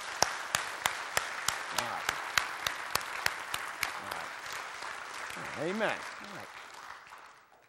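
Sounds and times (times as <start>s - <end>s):
audience clapping in unison: 0.0s - 7.6s
speech: 5.6s - 6.6s.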